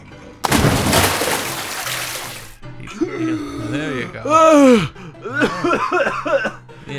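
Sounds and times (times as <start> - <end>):
splash into river water: 0.4 - 2.6
speech: 4.2 - 6.9.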